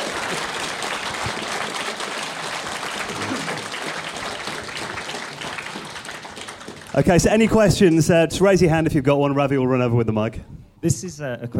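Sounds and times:
audience applause: 0.0s - 8.0s
speech: 7.0s - 11.5s.

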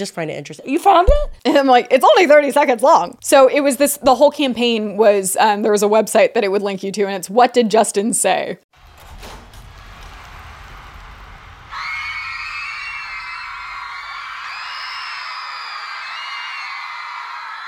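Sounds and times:
speech: 0.0s - 8.7s
low rumble: 8.8s - 13.9s
crowd of fans screaming loudly: 8.8s - 17.6s.

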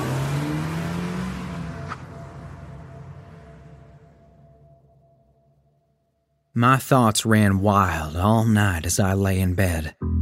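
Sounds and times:
parked car engine revving up as car pulls away: 0.0s - 4.4s
speech: 6.6s - 10.2s.

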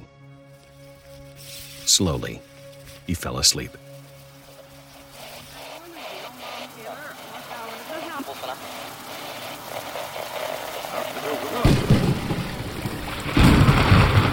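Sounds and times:
steady rain on a stormy night: 0.5s - 14.3s
speech: 1.9s - 2.5s, 3.1s - 3.9s
heavy rumbling thunder crashing loudly: 11.6s - 14.3s.

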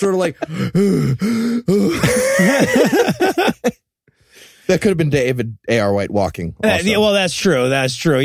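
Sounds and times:
speech: 0.0s - 3.8s, 4.7s - 8.2s
person imitating heavy huffing and puffing: 0.4s - 2.5s
laughter: 1.8s - 3.8s.

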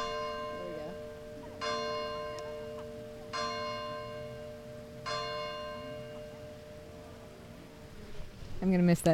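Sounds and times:
neighborhood church bell tolling the hour at 8 a.m.: 0.0s - 8.0s
faint voices murmuring: 0.0s - 9.1s
speech: 8.6s - 9.1s.

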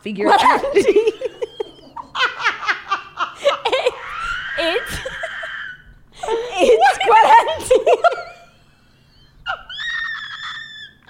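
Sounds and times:
speech: 0.0s - 1.4s
laughter: 0.2s - 11.0s
person screaming: 3.8s - 5.8s.

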